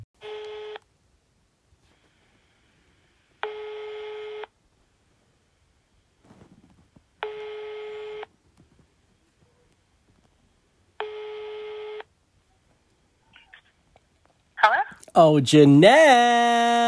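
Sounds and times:
telephone tones of an outgoing international call to Kenya: 0.2s - 0.8s, 3.4s - 4.6s, 7.2s - 8.3s, 11.0s - 12.1s
speech: 15.2s - 16.8s.

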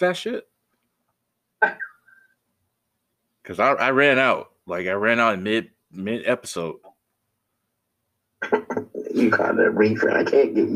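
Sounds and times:
speech: 0.0s - 0.5s, 3.5s - 6.9s, 8.4s - 10.7s
harsh cough trailing into a raspy wheeze: 1.6s - 2.0s.

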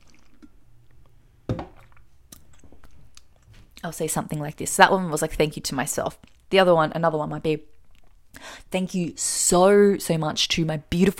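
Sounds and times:
person sipping water: 0.0s - 3.5s
speech: 3.8s - 7.7s, 8.7s - 11.1s.

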